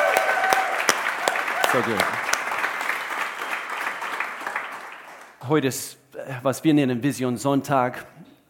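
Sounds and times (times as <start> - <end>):
room full of people clapping: 0.0 - 5.4
speech: 1.7 - 2.2, 5.5 - 8.2.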